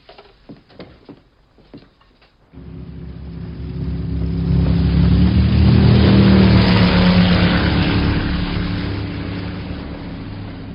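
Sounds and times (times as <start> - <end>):
motorboat engine droning: 2.6 - 10.7.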